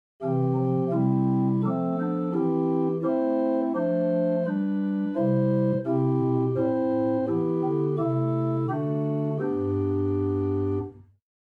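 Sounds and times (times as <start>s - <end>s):
Quintadena 8 organ stop: 0.2s - 11.0s.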